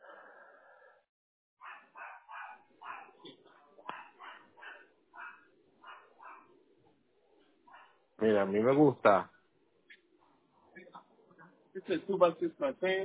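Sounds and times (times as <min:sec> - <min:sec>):
dogs barking with sharp loud yaps and higher yips: 0:01.6 - 0:06.7, 0:07.5 - 0:08.2
speech: 0:08.2 - 0:09.3, 0:11.8 - 0:13.0.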